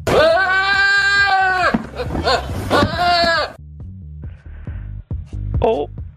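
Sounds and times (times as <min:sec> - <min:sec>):
billy goat bleating: 0:00.1 - 0:03.6
speech: 0:02.2 - 0:02.5, 0:05.6 - 0:06.0.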